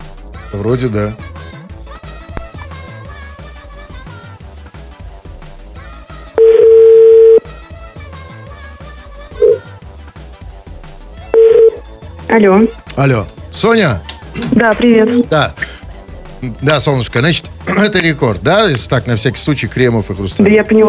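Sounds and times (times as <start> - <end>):
continuous music: 0.0 - 20.8
speech: 0.5 - 1.3, 12.3 - 15.6, 16.4 - 20.8
telephone tone while a call is being dialed: 6.4 - 7.5, 9.4 - 9.7, 11.3 - 11.8.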